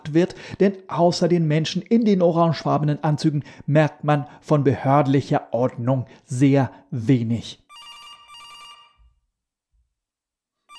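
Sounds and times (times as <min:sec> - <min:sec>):
speech: 0:00.1 - 0:07.6
telephone ringing with a bright buzzing tone: 0:07.7 - 0:09.2.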